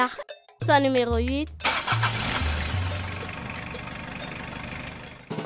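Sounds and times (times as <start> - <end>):
speech: 0.0 - 2.3
car engine running: 1.6 - 5.3.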